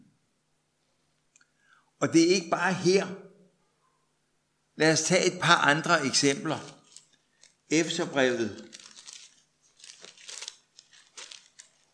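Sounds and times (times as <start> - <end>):
speech: 2.0 - 3.3, 4.8 - 6.8, 7.7 - 8.8
thin pages of a Bible being turned to find a passage: 5.8 - 11.9.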